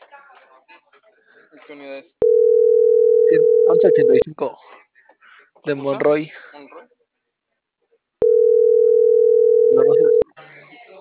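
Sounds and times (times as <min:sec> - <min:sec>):
speech: 0:01.7 - 0:02.2, 0:03.3 - 0:04.7, 0:05.6 - 0:06.4
telephone line tone on an unanswered call: 0:02.2 - 0:04.2, 0:08.2 - 0:10.2.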